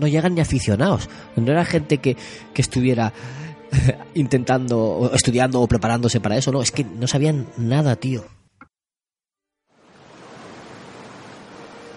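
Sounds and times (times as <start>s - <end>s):
speech: 0.0s - 8.4s
sea waves rushing: 9.8s - 11.9s.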